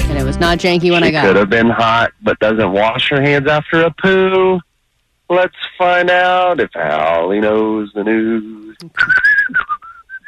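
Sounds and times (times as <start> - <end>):
speech: 0.2 - 4.7, 5.3 - 9.7
person whistling a short melodic phrase: 9.0 - 10.2.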